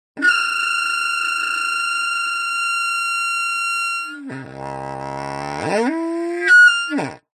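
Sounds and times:
air blown into pipe with squeaky mouthpiece: 0.2 - 7.3.

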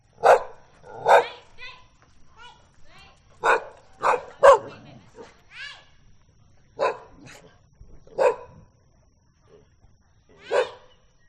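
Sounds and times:
angry dogs in a neighborhood in Hoi An Vietnam: 0.1 - 1.5, 3.3 - 5.5, 6.3 - 11.2.

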